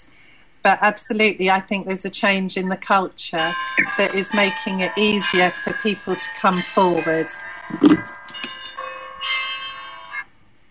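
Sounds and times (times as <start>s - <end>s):
speech: 0.6s - 8.2s
church bells ringing: 3.4s - 10.2s.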